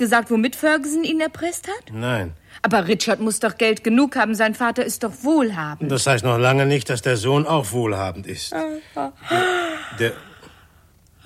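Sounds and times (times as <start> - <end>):
speech: 0.0 - 10.3
person yawning: 8.7 - 10.5.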